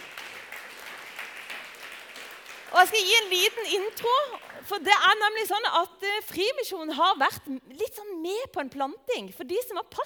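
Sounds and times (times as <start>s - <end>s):
crowd applauding for a guest walking up: 0.0s - 4.7s
speech: 2.7s - 10.0s.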